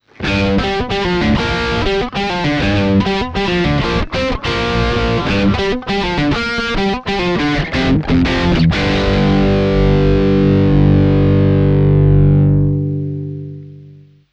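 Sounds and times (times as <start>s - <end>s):
rock guitar through amp simulator pedal: 0.0s - 14.3s.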